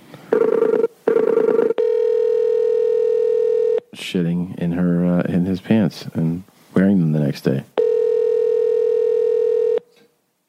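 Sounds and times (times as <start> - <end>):
phone call ringing tone: 0.3 - 3.8, 7.8 - 9.8
speech: 4.1 - 7.7.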